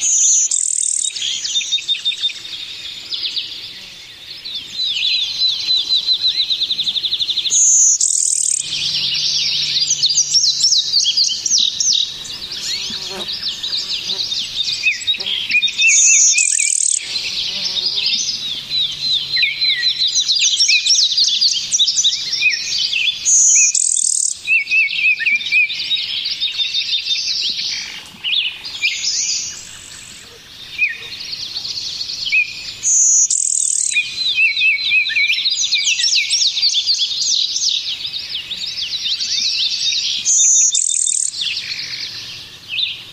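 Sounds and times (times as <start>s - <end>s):
city birds chirping and singing in New York City during the COVID pandemic: 0.0s - 43.1s.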